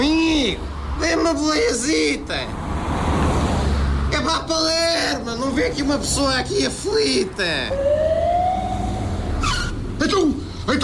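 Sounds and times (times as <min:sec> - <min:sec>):
speech: 0:00.0 - 0:03.0, 0:04.1 - 0:08.1, 0:10.0 - 0:10.8
low vehicle rumble: 0:02.4 - 0:10.7
ambulance siren wailing: 0:07.6 - 0:09.8.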